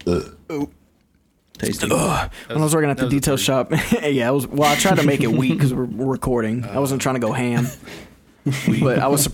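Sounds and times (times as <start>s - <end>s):
person burping: 0.0s - 0.8s, 1.6s - 2.3s
speech: 0.0s - 0.8s, 1.6s - 9.3s.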